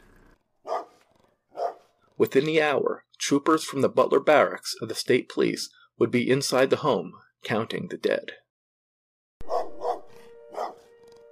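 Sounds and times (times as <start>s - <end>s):
dogs barking ferociously: 0.6s - 1.9s, 9.4s - 10.9s
speech: 2.2s - 8.4s.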